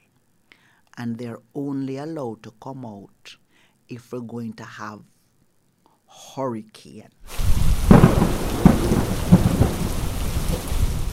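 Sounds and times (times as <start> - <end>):
speech: 1.0 - 5.1, 6.1 - 7.2
steady rain hissing: 7.3 - 11.1
deep rolling thunder rumbles: 7.4 - 11.1.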